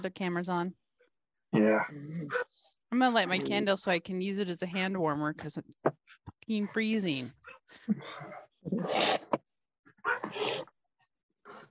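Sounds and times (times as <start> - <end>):
speech: 0.0 - 0.8, 1.5 - 9.4, 10.0 - 10.7
dog barking: 2.3 - 2.5, 10.0 - 10.5.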